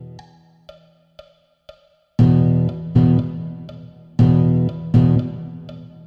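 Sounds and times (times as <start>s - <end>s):
blues rhythm: 2.2s - 6.0s.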